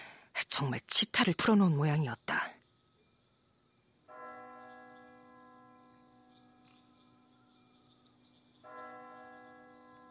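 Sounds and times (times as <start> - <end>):
speech: 0.6 - 2.4
distant church bell chiming at night: 2.8 - 10.0.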